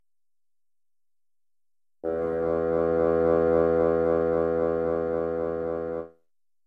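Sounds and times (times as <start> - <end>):
bassoon playing E2 note: 2.0 - 6.1.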